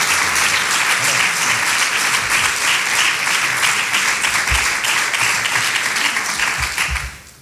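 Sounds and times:
large audience applauding: 0:00.0 - 0:07.3.

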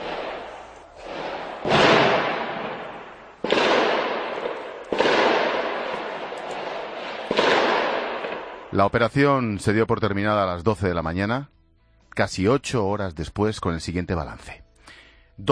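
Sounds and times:
explosions during a police operation against terrorists: 0:00.0 - 0:08.9
isolated gunshots during a police operation: 0:00.0 - 0:08.9
speech: 0:08.7 - 0:11.6, 0:12.2 - 0:15.5.

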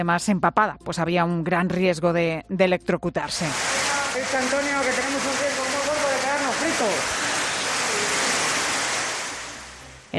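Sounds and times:
speech: 0:00.0 - 0:05.7
floodwater rushing through town streets in Asturias: 0:03.3 - 0:10.1.

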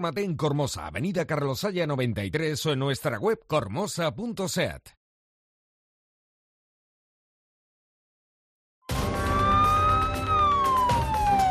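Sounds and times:
speech: 0:00.0 - 0:05.0
police car siren wailing: 0:08.9 - 0:11.5.

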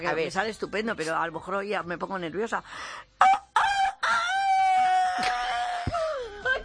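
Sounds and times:
speech: 0:00.0 - 0:03.4
woman imitating a rooster crowing: 0:03.2 - 0:06.3.

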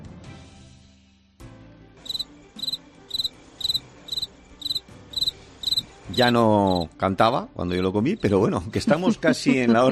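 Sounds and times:
cricket chirping: 0:02.0 - 0:06.8
speech: 0:06.2 - 0:09.8
laughter: 0:08.7 - 0:09.8.

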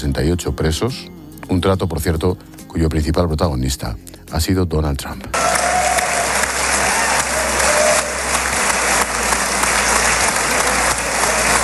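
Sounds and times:
speech: 0:00.0 - 0:05.5
sustained applause from a large assembled crowd in parliament: 0:05.4 - 0:11.6.

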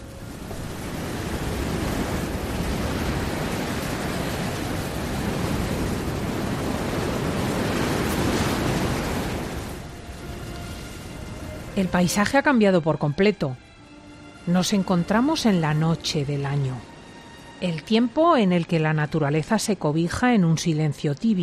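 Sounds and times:
wind blowing through a wide-open window: 0:00.0 - 0:11.8
speech: 0:11.8 - 0:13.7, 0:14.4 - 0:16.9, 0:17.6 - 0:21.4.

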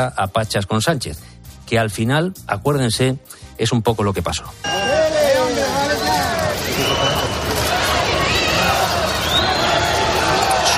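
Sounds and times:
speech: 0:00.0 - 0:05.2
shrill whistles from a crowd: 0:04.6 - 0:10.6
large crowd booing: 0:04.7 - 0:10.7.

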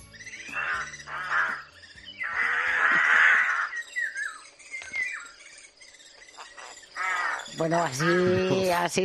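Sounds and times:
rook cawing harshly: 0:00.5 - 0:03.9, 0:06.6 - 0:08.5
speech: 0:07.6 - 0:09.0.

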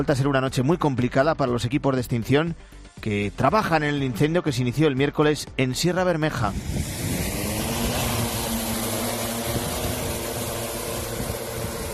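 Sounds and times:
speech: 0:00.0 - 0:07.2
remotely piloted aircraft droning engine hum supporting night wildfire firefighting: 0:06.2 - 0:11.9.

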